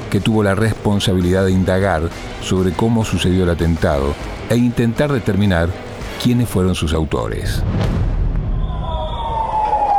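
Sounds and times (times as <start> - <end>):
speech: 0.1 - 8.1
backup ambulance siren wailing in the street: 8.7 - 9.9.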